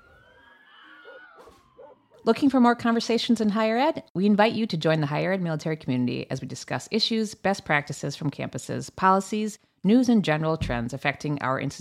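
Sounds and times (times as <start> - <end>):
ambulance siren wailing: 0.0 - 2.6
speech: 2.2 - 11.7.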